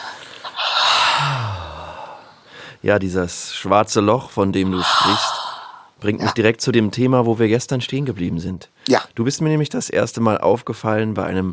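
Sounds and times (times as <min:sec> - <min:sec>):
deep breath in and out during a guided relaxation: 0:00.0 - 0:02.8, 0:04.6 - 0:06.0
speech: 0:02.8 - 0:05.4, 0:06.0 - 0:11.5.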